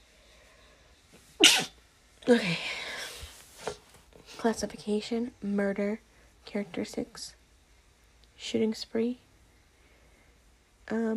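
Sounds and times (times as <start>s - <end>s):
person sneezing: 1.4s - 1.8s
speech: 2.3s - 2.8s, 4.4s - 7.4s, 8.4s - 9.2s, 10.9s - 11.1s.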